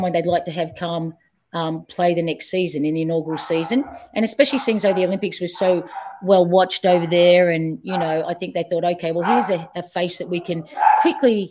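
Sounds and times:
speech: 0.0 - 11.4
dog barking: 3.3 - 6.3, 6.9 - 8.2, 9.2 - 9.7, 10.4 - 11.2.

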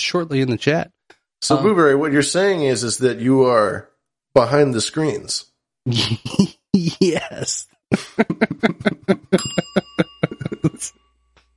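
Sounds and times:
speech: 0.0 - 11.1
laughter: 5.9 - 10.9
bell ringing in bright metallic dings: 9.3 - 11.4.

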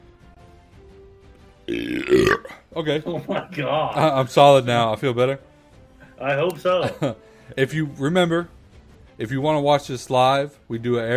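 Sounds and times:
long drawn-out burp: 1.7 - 2.6
speech: 1.7 - 5.5, 6.2 - 8.6, 9.2 - 11.1.

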